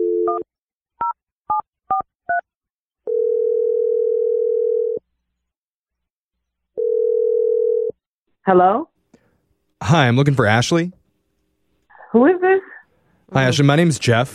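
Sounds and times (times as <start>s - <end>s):
telephone ringing tones: 3.1s - 5.0s, 6.8s - 8.0s
speech: 8.5s - 8.9s, 9.8s - 11.0s, 12.1s - 12.7s, 13.3s - 14.3s.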